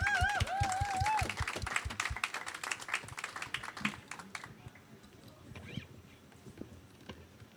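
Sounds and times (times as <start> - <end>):
audience clapping: 0.0 - 5.1.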